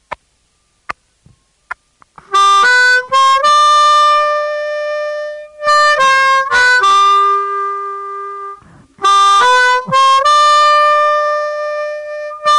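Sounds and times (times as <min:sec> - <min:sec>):
harmonica blues lick: 0:02.2 - 0:12.5.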